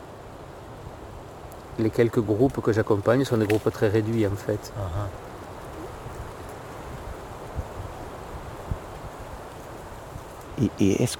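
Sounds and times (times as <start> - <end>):
wind rustling through fir tree branches in a fir forest: 0.0 - 11.1
speech: 1.8 - 5.3, 10.6 - 11.1.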